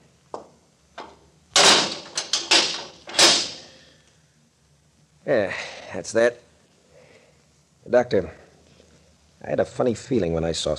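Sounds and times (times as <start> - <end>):
door being locked at a morgue: 1.0 - 3.6
speech: 5.3 - 6.4, 7.9 - 8.4, 9.4 - 10.7.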